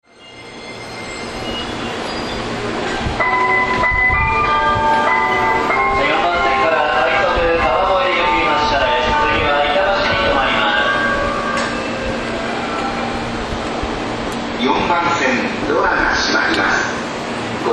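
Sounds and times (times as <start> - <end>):
train departure melody at Ikebukuro Station on the Yamanote Line: 0.0 - 17.6.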